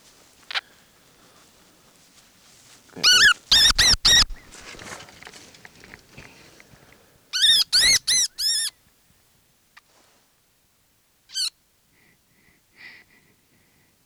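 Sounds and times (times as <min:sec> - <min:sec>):
faint rustling: 0:00.0 - 0:08.1
baby wood rat squeaking: 0:03.0 - 0:04.6, 0:07.4 - 0:08.7, 0:11.3 - 0:11.5.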